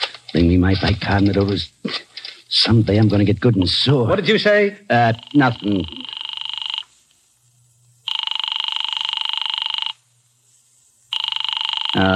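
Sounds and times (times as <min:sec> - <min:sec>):
speech: 0:00.3 - 0:06.0, 0:12.0 - 0:12.1
telephone ringing unanswered in an office: 0:05.0 - 0:06.9, 0:08.1 - 0:10.0, 0:11.1 - 0:12.1.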